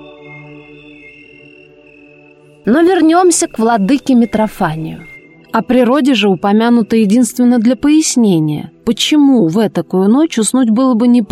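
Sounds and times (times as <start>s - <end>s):
chorus of cicadas chirring at night: 1.1s - 5.2s
speech: 2.6s - 11.3s.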